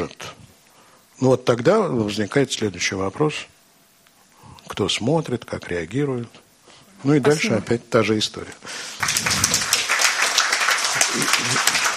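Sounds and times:
speech: 1.2s - 3.6s, 4.7s - 6.4s, 7.0s - 9.4s, 11.2s - 11.8s
audience applause after a spoken performance: 9.0s - 11.9s.

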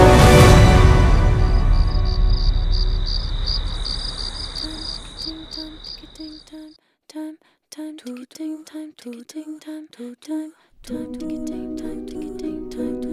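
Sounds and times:
loud wash of noise: 0.1s - 5.9s
crickets chirping: 1.5s - 6.7s.

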